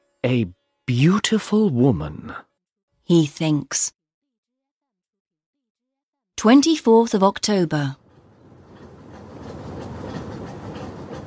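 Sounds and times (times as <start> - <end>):
speech: 0.2 - 2.5, 3.1 - 4.0, 6.4 - 8.0
train bound for Calcutta running on rails: 6.4 - 11.2.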